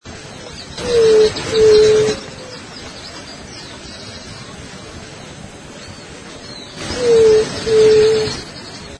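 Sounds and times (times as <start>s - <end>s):
yerutí dove calling: 0.7s - 3.8s, 6.7s - 8.6s.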